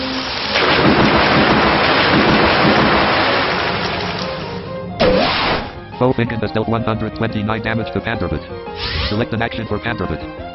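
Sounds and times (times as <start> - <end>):
rain: 0.0 - 4.7
rumbling thunder: 0.6 - 4.4
speech: 6.0 - 10.5.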